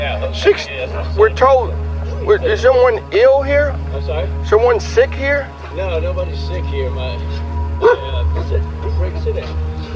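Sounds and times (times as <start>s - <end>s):
speech: 0.3s - 9.9s
large German Shepherd dog barking: 7.8s - 8.0s.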